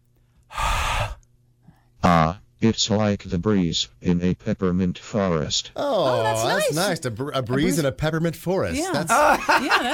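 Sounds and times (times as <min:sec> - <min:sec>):
person breathing hard into a microphone: 0:00.5 - 0:01.9
speech: 0:02.2 - 0:09.9
laughter: 0:09.1 - 0:09.9.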